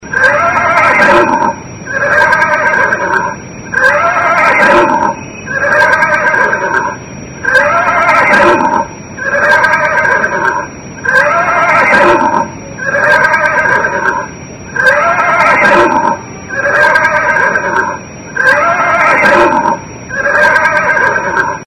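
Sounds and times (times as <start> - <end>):
horse neighing: 0.1 - 21.6.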